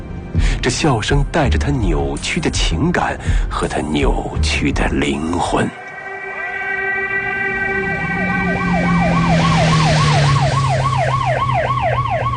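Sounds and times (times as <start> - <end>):
deep vehicle engine rumbling: 0.0 - 12.3
speech: 0.6 - 5.8
several police convoy sirens wailing and warbling: 5.5 - 12.3.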